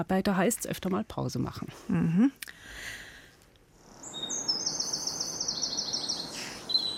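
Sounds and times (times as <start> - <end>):
speech: 0.0 - 3.0
soft outdoor background: 0.0 - 6.9
birds singing spring courtship songs at dawn: 3.9 - 6.9.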